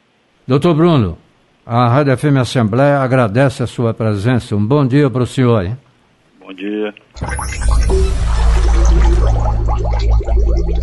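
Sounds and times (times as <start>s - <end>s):
speech: 0.5s - 5.8s, 6.5s - 10.8s
low sustained hum: 7.2s - 10.8s
water pouring and dripping: 7.2s - 10.8s.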